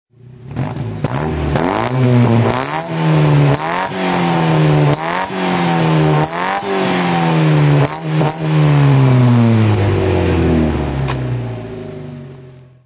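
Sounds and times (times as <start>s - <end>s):
car engine throttle revving: 0.2s - 12.8s.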